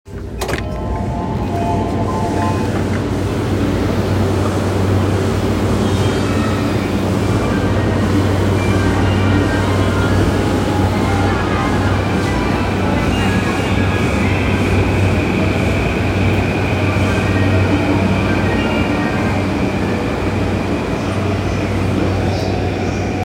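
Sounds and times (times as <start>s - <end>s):
Yamanote Line train running clockwise: 0.1s - 23.2s.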